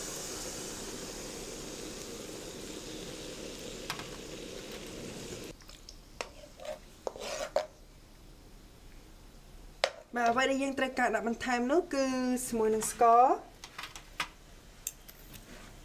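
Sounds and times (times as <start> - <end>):
stirring hot coconut milk in a pot: 6.2 - 7.8
speech: 10.2 - 13.5.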